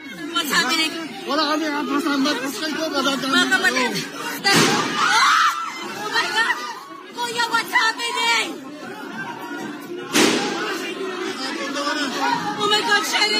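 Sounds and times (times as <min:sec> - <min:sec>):
panicked crowd shouting and screaming: 0:00.0 - 0:13.3
speech: 0:00.4 - 0:05.3, 0:11.7 - 0:13.3
sharp bang: 0:10.1 - 0:10.7.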